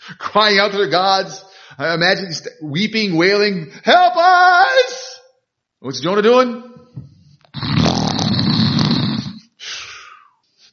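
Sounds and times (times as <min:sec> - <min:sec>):
speech: 0:00.1 - 0:05.0, 0:05.8 - 0:06.8
person making an exaggerated imitation of a loud snore: 0:07.5 - 0:09.5.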